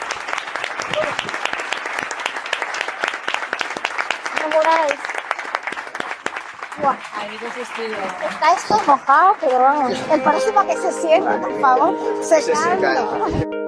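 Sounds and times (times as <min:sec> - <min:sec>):
audience applauding: 0:00.0 - 0:11.0
cheer or shout: 0:00.8 - 0:01.3
speech: 0:04.6 - 0:05.2, 0:06.8 - 0:13.6.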